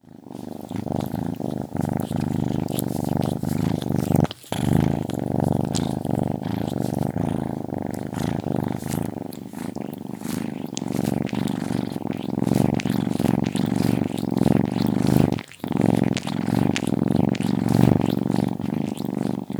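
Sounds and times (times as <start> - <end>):
kitten purring: 0.0 - 19.5.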